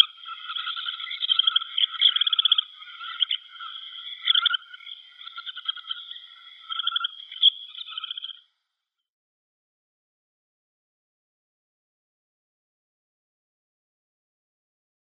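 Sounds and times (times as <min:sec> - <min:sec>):
Semipalmated sandpiper flock calling: 0:00.0 - 0:08.4.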